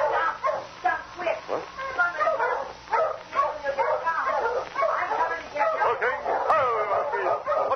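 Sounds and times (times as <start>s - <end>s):
agitated dog barking and whimpering: 0.0s - 0.7s, 1.5s - 7.7s
speech: 1.5s - 1.8s.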